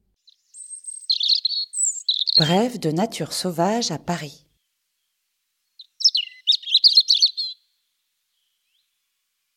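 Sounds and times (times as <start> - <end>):
European robin singing: 0.2 - 4.7, 5.7 - 7.7
speech: 2.4 - 4.4.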